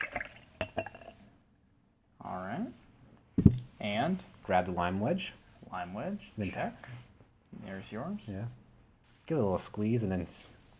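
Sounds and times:
sharp glassy clinks: 0.0 - 1.2
pisco pouring into a glass: 0.0 - 1.3
speech: 3.8 - 7.0, 7.7 - 8.6, 9.3 - 10.6.

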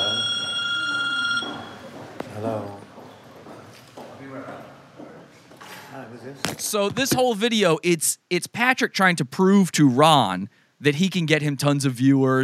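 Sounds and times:
telephone ringing with a bright electronic tone: 0.0 - 2.1
speech: 2.4 - 2.8, 6.2 - 12.4.

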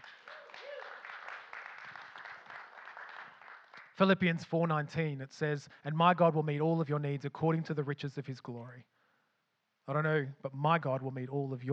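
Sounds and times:
audience clapping: 0.0 - 4.2
speech: 4.0 - 9.0, 9.9 - 11.7.

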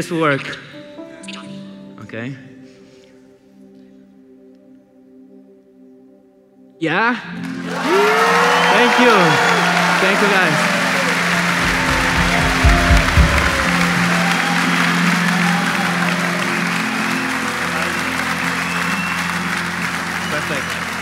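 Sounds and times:
speech: 0.0 - 0.8, 2.1 - 2.5, 6.8 - 10.7
crowd clapping loudly: 7.4 - 21.0.

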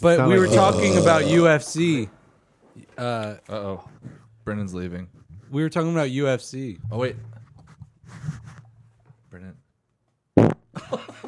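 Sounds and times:
speech: 0.0 - 2.2, 2.8 - 7.3
fart: 0.3 - 1.5, 10.4 - 10.7.

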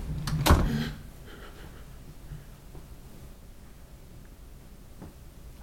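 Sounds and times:
door opening with a brief thump: 0.2 - 0.9
door creaking and scraping: 0.2 - 1.0.

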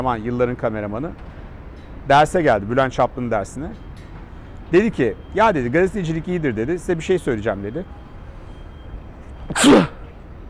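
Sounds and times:
speech: 0.0 - 1.3, 2.1 - 3.9, 4.7 - 8.0, 9.6 - 9.9
person sneezing: 9.5 - 10.0.

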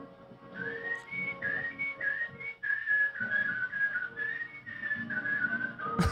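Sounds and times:
sustained reedy throat-whistled melody: 0.3 - 6.1.

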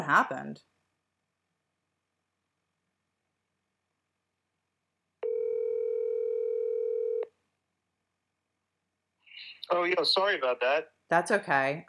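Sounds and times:
speech: 0.1 - 0.8, 9.7 - 11.8
telephone dial tone while calling back: 5.2 - 7.3.

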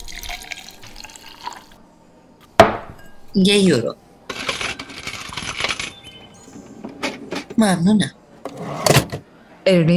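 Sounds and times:
fresh juice pouring and gurgling into a glass: 0.0 - 1.8
speech: 3.4 - 4.0, 7.6 - 8.8, 9.6 - 9.9.

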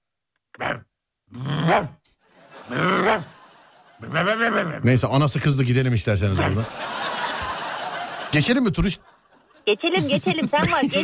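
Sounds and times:
person imitating wild dogs barking and yapping as they play: 0.5 - 2.0, 2.7 - 3.4, 4.0 - 4.8, 6.4 - 6.6
speech: 0.6 - 2.0, 2.7 - 3.4, 4.0 - 7.0, 8.3 - 11.0
laughter: 2.3 - 4.6, 6.3 - 11.0.

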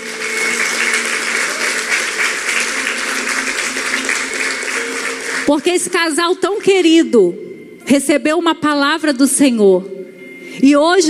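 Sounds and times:
crowd applauding in a large room: 0.0 - 7.0
speech: 5.5 - 10.0, 10.6 - 11.0.

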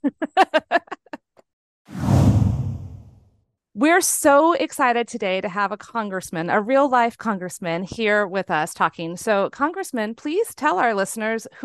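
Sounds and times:
laughter-like vocal bursts: 0.0 - 1.2
loud breathy whoosh transition sound effect: 1.9 - 3.1
speech: 3.8 - 11.6.

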